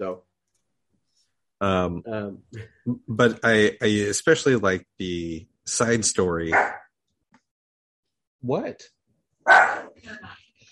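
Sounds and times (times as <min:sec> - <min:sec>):
speech: 0:00.0 - 0:00.3, 0:01.6 - 0:06.8, 0:08.4 - 0:10.4
dog barking outside: 0:06.5 - 0:06.9, 0:09.5 - 0:10.0.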